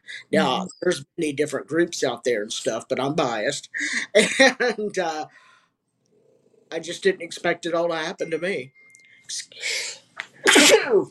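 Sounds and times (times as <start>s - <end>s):
speech: 0.2s - 5.4s, 6.7s - 11.0s
quick hissing intakes of breath: 9.6s - 10.1s
person sneezing: 10.4s - 11.0s.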